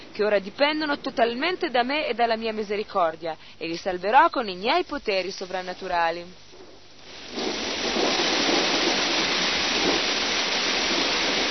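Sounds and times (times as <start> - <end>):
speech: 0.2 - 6.4
heavy rain falling: 6.9 - 11.4.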